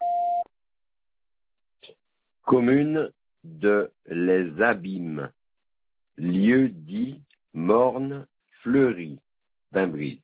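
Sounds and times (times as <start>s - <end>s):
answering machine beep on a water utility's line: 0.0s - 0.4s
speech: 2.5s - 5.4s, 6.2s - 10.2s.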